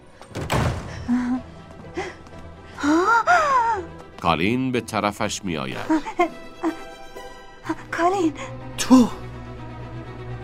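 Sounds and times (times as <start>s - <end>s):
person breathing heavily and gasping: 1.0s - 3.7s
speech: 4.2s - 6.4s, 8.1s - 9.2s.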